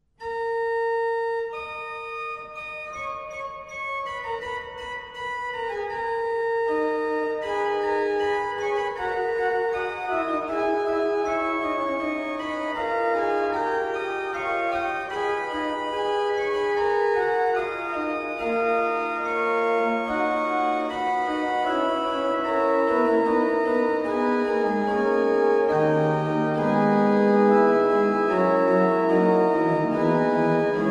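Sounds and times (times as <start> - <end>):
modern organ: 0.3 - 30.8.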